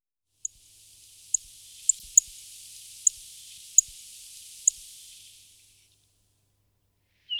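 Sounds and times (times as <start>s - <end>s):
Emberiza rustica singing: 0.4s - 5.8s.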